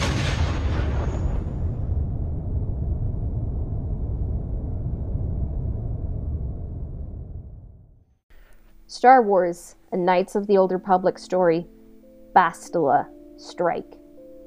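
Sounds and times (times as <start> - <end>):
starship jumping into hyperspace: 0.0 - 8.1
speech: 8.9 - 11.8, 12.4 - 14.0.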